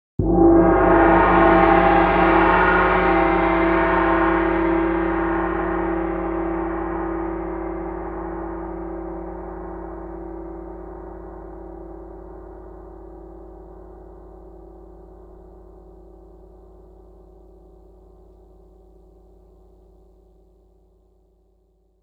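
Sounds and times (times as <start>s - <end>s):
gongs tuned to G3: 0.2s - 14.2s.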